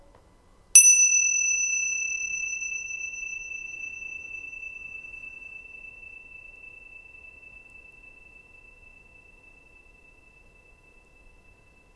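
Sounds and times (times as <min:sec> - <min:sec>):
single bell struck once, bright ringing tone: 0:00.8 - 0:04.9.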